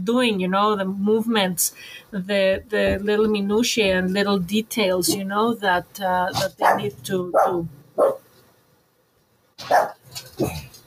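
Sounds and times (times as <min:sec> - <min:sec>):
speech: 0:00.0 - 0:08.2, 0:09.6 - 0:10.6
small pug dog barking: 0:06.6 - 0:08.2, 0:09.6 - 0:10.5.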